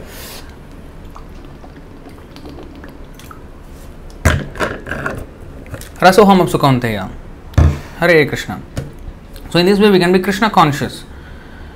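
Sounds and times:
person drinking water with wet swallowing and mouth sounds: 1.0 - 3.5
speech: 6.0 - 7.2, 8.0 - 8.7, 9.5 - 11.1.

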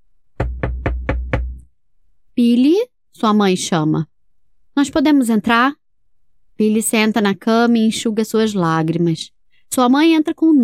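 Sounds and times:
firm knocks on a wooden bedroom door: 0.4 - 1.6
speech: 2.4 - 4.1, 4.8 - 5.8, 6.6 - 10.6.

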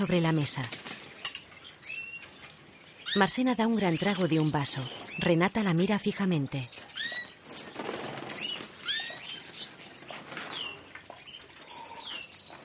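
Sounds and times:
speech: 0.0 - 0.9, 3.1 - 6.8
thin bird chirps: 0.0 - 12.6
bird wings fluttering as birds fly around a dining room: 7.5 - 11.2.

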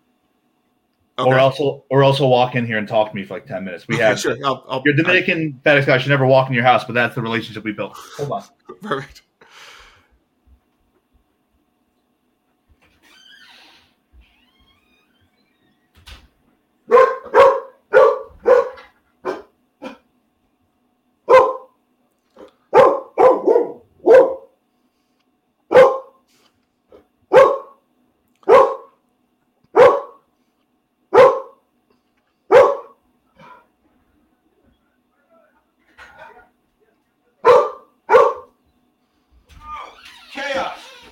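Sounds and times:
speech: 1.2 - 9.7
dog barking indoors: 16.9 - 19.5, 21.3 - 21.8, 22.4 - 24.6, 25.7 - 26.2, 27.3 - 27.8, 28.4 - 29.0, 29.7 - 30.2, 31.1 - 31.6, 32.5 - 33.0, 37.4 - 38.6.

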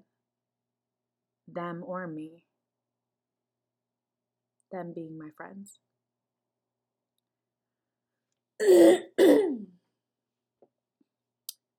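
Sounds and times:
speech: 1.5 - 2.5, 4.7 - 5.9, 8.6 - 9.3
person clearing throat: 8.6 - 9.6.

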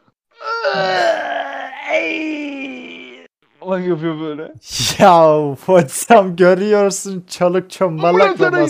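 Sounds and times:
voice imitating a man wailing in pain: 0.4 - 3.3
speech: 3.8 - 8.6.

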